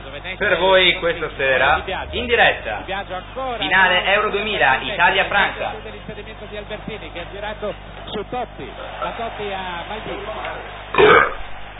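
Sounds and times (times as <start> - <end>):
steady low hum: 0.0 - 11.7
speech: 0.2 - 11.4
loud burp: 10.9 - 11.5.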